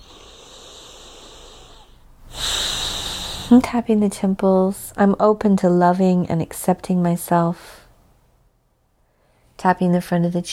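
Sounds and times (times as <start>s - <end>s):
big deep breath during an eyebrow-tapping exercise: 0.0s - 3.8s
speech: 3.5s - 7.8s, 9.6s - 10.5s.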